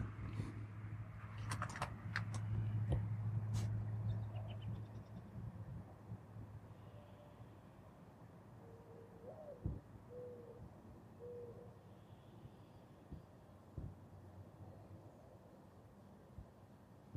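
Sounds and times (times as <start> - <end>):
quiet outdoor background: 0.0 - 17.1
common bird giving soft owl-like hooting call: 8.6 - 12.3.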